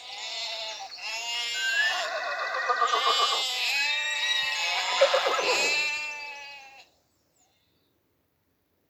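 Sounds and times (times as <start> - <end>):
horse on a farm neighing: 1.4 - 6.0.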